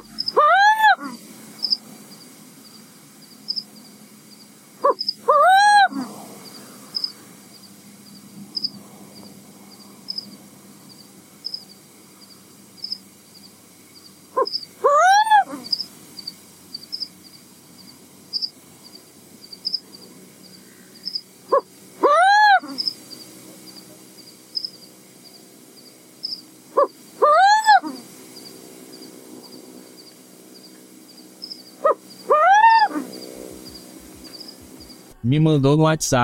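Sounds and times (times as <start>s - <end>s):
black owl calling in a treeless backyard: 0.0s - 1.8s, 4.8s - 7.2s, 14.3s - 15.9s, 20.6s - 23.0s, 26.2s - 28.1s, 31.4s - 35.0s
speech: 35.2s - 36.2s.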